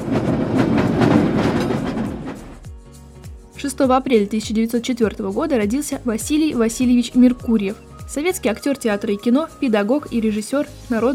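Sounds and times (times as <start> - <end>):
tram rolling along its rails with a low rumble: 0.0 - 2.7
speech: 3.6 - 11.1.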